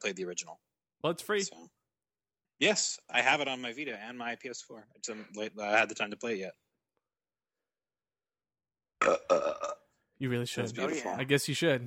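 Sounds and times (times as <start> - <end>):
speech: 0.0 - 1.8, 2.6 - 6.6, 9.0 - 11.8
person burping: 9.0 - 10.0.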